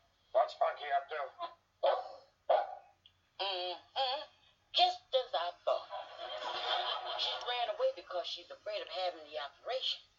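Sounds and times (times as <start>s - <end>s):
speech: 0.5s - 1.6s, 3.4s - 4.3s, 8.2s - 10.1s
dog barking: 1.8s - 3.0s
laughter: 5.7s - 7.6s.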